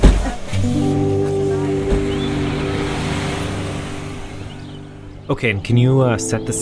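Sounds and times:
bus doors thudding and hissing at a stop: 0.0 - 5.3
bus engine idling: 0.0 - 6.6
speech: 0.6 - 1.0, 5.3 - 6.6.

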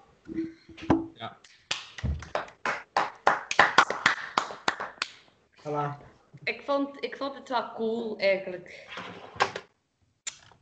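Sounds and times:
sharp rhythmic hand clapping: 1.4 - 5.3
speech: 5.7 - 9.3.

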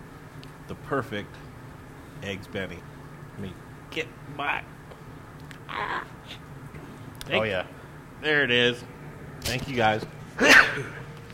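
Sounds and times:
speech: 0.8 - 1.5, 2.2 - 4.8, 7.3 - 11.0
person sneezing: 10.4 - 11.1.

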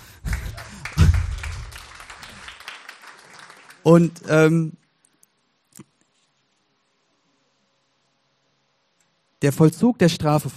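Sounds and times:
crowd clapping: 0.0 - 4.2
speech: 3.8 - 4.8, 9.4 - 10.5.

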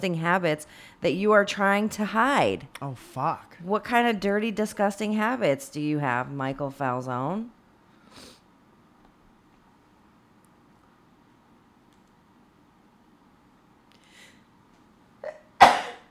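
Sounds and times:
speech: 0.0 - 7.6
person sneezing: 15.2 - 16.0.

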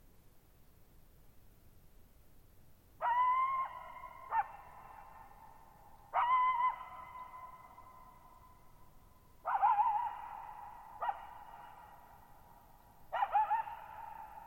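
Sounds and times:
lone coyote howling at night in meadows on a high dry plateau: 3.0 - 8.4, 9.4 - 12.0, 13.1 - 14.4.

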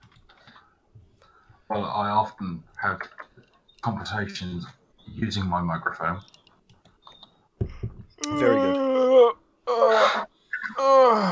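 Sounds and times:
speech: 1.7 - 3.2, 3.8 - 6.4, 8.2 - 10.2
person yawning: 8.2 - 11.3.

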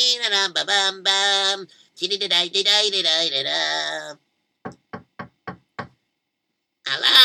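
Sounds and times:
speech: 0.1 - 4.8, 6.9 - 7.2
knocking on a door: 4.6 - 6.0.

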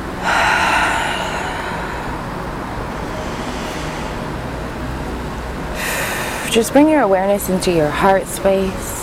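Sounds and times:
deep breath inhale and exhale: 0.2 - 6.6
speech: 6.5 - 8.9.

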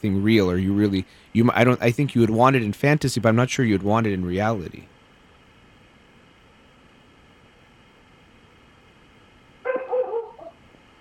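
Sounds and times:
speech: 0.0 - 4.9
female dog barking: 9.6 - 10.6.

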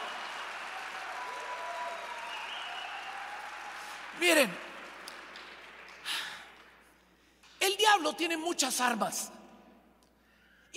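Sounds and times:
audience applauding: 0.0 - 7.0
speech: 4.2 - 4.6, 8.0 - 9.4.

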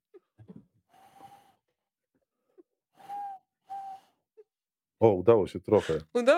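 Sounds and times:
person imitating tawny owl hoots by blowing through cupped hands: 3.0 - 4.1
speech: 5.0 - 6.3.

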